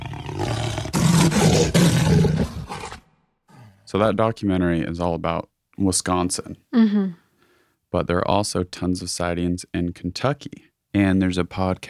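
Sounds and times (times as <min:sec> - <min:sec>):
jaguar roaring: 0:00.0 - 0:03.0
speech: 0:03.9 - 0:07.2, 0:07.9 - 0:11.8.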